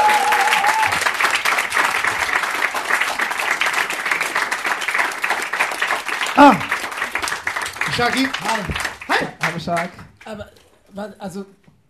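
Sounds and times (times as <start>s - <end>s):
whoop or whistle from the audience: 0.0s - 1.0s
audience applauding: 0.0s - 10.3s
speech: 8.0s - 11.6s.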